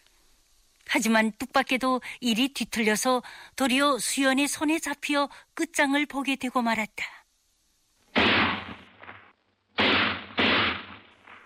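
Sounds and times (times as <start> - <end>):
speech: 0.9 - 7.2
gunshots: 8.1 - 11.4.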